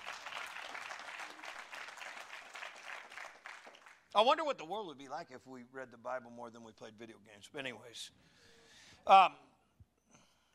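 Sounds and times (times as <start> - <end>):
audience applause: 0.0 - 4.0
speech: 4.2 - 9.5.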